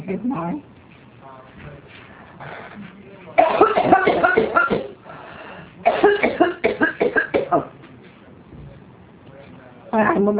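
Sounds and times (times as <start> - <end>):
speech: 0.0 - 0.8, 10.0 - 10.3
harsh coughing: 3.4 - 5.0, 5.8 - 7.7.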